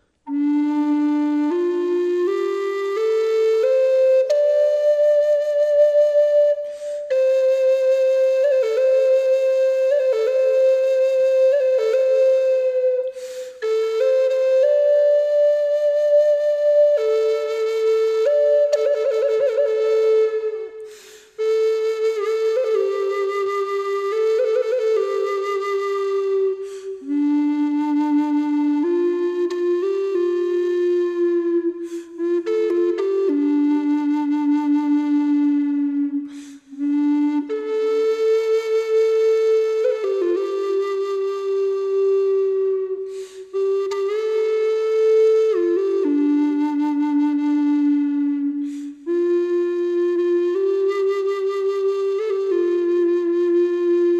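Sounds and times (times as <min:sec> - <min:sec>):
cedar wooden flute: 0:00.0 - 0:54.1.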